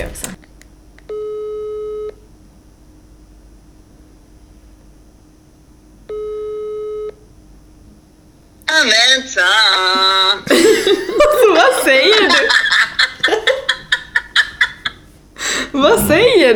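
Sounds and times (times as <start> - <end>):
electronic phone ringback tone: 1.1 - 2.2, 6.1 - 7.2
laughter: 9.6 - 16.5.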